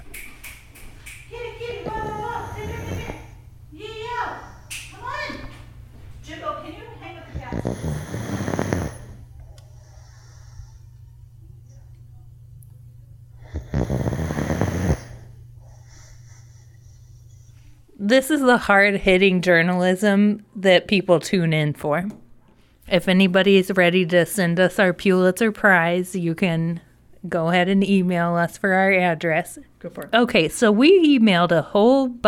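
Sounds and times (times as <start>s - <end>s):
pet snoring loudly: 1.8s - 3.4s, 7.3s - 10.8s, 13.4s - 16.6s
speech: 18.1s - 22.2s, 22.9s - 32.2s.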